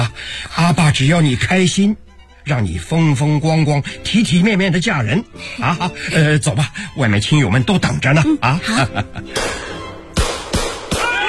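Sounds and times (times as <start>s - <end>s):
speech: 0.6s - 9.6s
laughter: 5.6s - 6.8s, 7.8s - 9.8s
gunshots at a wedding: 10.2s - 11.2s.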